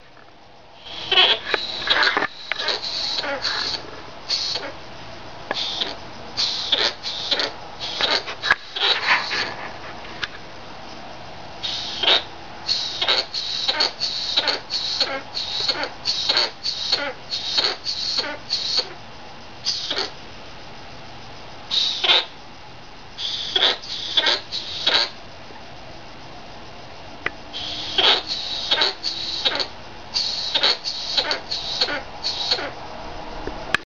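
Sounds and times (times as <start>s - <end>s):
sugar glider grunting painfully: 0.8s - 4.8s, 5.5s - 9.6s, 11.6s - 19.0s, 19.6s - 20.2s, 21.7s - 22.4s, 23.2s - 25.2s, 27.5s - 32.8s.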